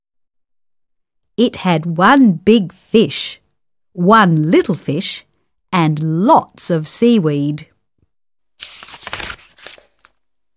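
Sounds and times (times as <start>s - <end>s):
speech: 1.4s - 3.4s, 4.0s - 7.7s
thin tissue paper torn by hand for a craft: 8.6s - 10.1s.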